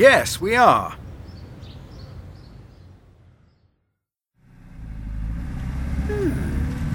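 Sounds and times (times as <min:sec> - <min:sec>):
speech: 0:00.0 - 0:01.0
road rumble: 0:00.0 - 0:03.6, 0:04.4 - 0:06.9
car engine driving into town: 0:04.4 - 0:06.9.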